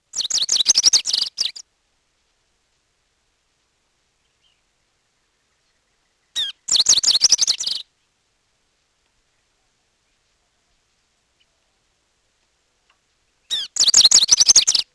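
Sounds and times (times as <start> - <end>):
rufous-crowned sparrow calling: 0.0 - 1.6, 5.4 - 7.9, 13.3 - 14.9.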